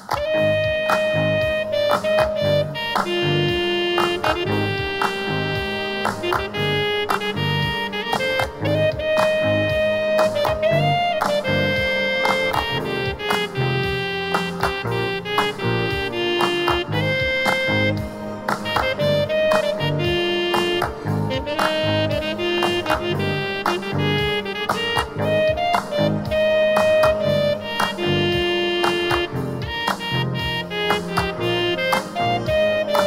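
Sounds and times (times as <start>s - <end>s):
saxophone wash: 0.1s - 33.0s.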